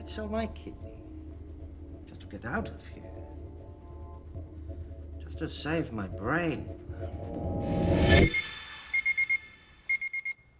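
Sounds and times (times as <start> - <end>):
speech: 0.1 - 1.0, 2.1 - 3.2, 5.3 - 8.5
electronic alarm clock beeping at a hotel reception: 8.2 - 10.5.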